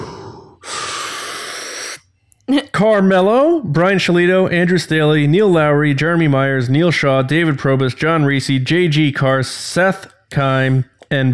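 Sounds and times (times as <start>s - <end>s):
long deep inhalation: 0.0s - 2.2s
speech: 2.5s - 11.3s.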